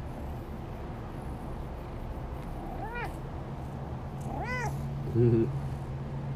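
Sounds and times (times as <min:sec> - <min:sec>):
steady low rumble: 0:00.0 - 0:06.3
cat meowing: 0:02.8 - 0:03.2, 0:04.2 - 0:04.8
speech: 0:05.2 - 0:05.6.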